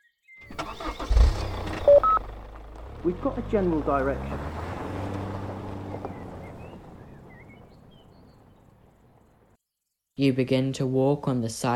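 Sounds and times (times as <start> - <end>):
car engine starting and running: 0.5 - 9.4
speech: 3.0 - 4.6, 10.2 - 11.7.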